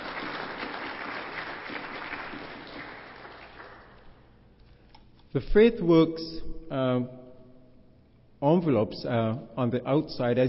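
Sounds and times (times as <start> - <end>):
crowd applauding: 0.0 - 4.2
speech: 5.3 - 7.2, 8.4 - 10.4.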